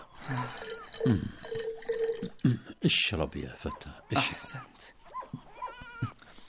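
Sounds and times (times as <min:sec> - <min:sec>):
water poured from a jar into a cup: 0:00.0 - 0:02.4
speech: 0:00.3 - 0:01.4, 0:02.8 - 0:05.0.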